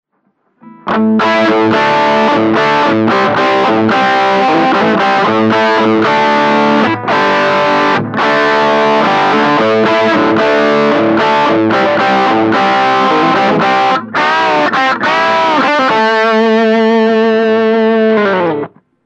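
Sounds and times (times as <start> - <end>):
JCM 900 amplifier: 0.1 - 19.0.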